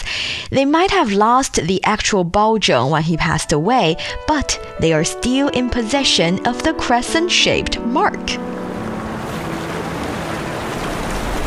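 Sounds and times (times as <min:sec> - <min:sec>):
speech: 0:00.5 - 0:08.6
fast-moving lake water churning and lapping: 0:08.5 - 0:11.4
steady wind buffeting the microphone: 0:08.6 - 0:11.4.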